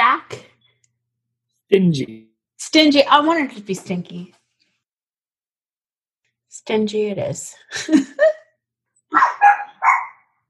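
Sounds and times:
speech: 0:01.7 - 0:04.4, 0:06.6 - 0:08.3
dog barking: 0:09.1 - 0:10.3.

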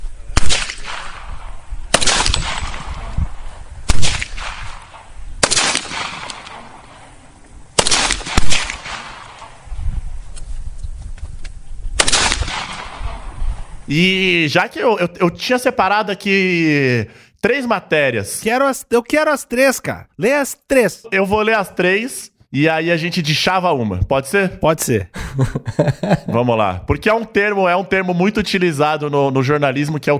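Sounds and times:
gunshot sound effect bangs with brief ringing tail: 0:00.4 - 0:07.0, 0:07.8 - 0:09.6, 0:12.0 - 0:13.4
speech: 0:13.9 - 0:30.1
laughter: 0:25.2 - 0:26.6.

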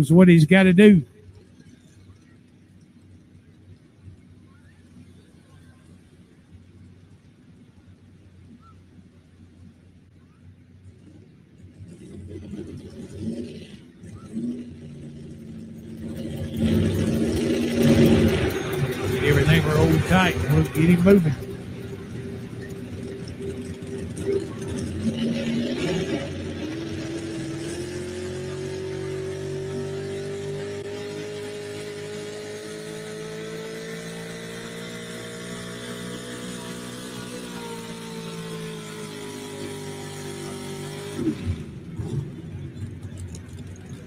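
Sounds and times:
pulling truck engine straining under heavy load during a truck pull: 0:00.0 - 0:01.1, 0:11.8 - 0:44.0
speech: 0:00.0 - 0:01.1.

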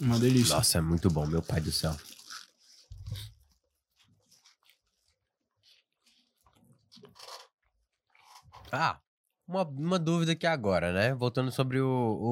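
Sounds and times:
speech: 0:00.0 - 0:02.2, 0:08.7 - 0:12.2
biting and chewing of a soft Nutella cookie pie: 0:00.0 - 0:07.5.

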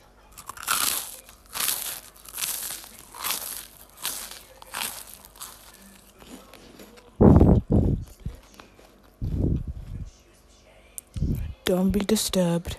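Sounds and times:
chewing crisp crinkle toast: 0:00.3 - 0:10.0
low-pitched mouth or voice sounds: 0:07.2 - 0:08.2
speech: 0:11.7 - 0:12.7.

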